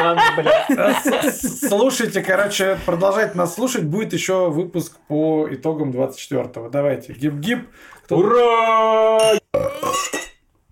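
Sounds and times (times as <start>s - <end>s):
laughter: 0.0s - 3.5s
speech: 0.0s - 10.3s
loud long burp with a buzzy voiced tone: 9.3s - 10.2s.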